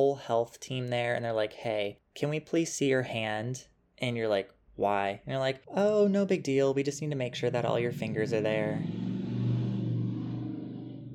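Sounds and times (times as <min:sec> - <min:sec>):
speech: 0:00.0 - 0:09.0
loud motorcycle engine revving: 0:07.3 - 0:11.1.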